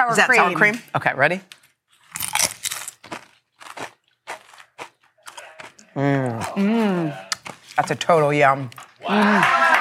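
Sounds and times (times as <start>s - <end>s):
speech: 0.0s - 1.6s, 6.0s - 9.7s
crunching of crisp Dorito chips with sour cream: 1.9s - 6.6s.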